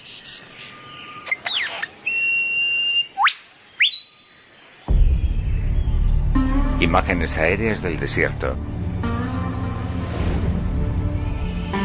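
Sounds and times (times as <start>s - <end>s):
lyrebird whistling during its courtship dance: 1.3s - 4.4s
low rumbling noise: 4.9s - 11.8s
speech: 6.8s - 8.7s.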